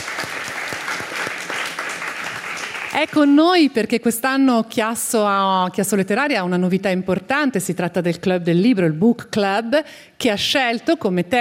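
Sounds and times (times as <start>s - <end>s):
audience applauding at a literary event: 0.0s - 3.4s
speech: 3.0s - 11.4s.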